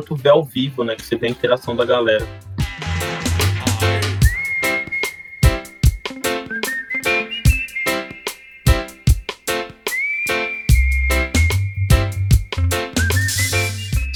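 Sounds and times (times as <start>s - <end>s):
speech: 0.0s - 3.3s
full band with punchy drums and bass: 1.0s - 14.1s
clear whistled melody: 3.9s - 14.1s.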